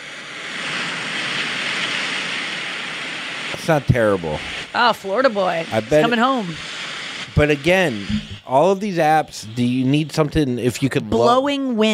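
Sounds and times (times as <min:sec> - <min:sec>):
ocean waves crashing: 0:00.0 - 0:08.6
speech: 0:03.7 - 0:06.7, 0:07.4 - 0:11.9.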